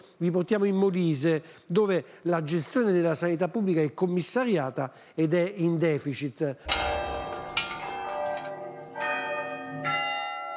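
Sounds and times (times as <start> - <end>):
speech: 0.2 - 7.0
church bells ringing in a peal: 6.7 - 10.5.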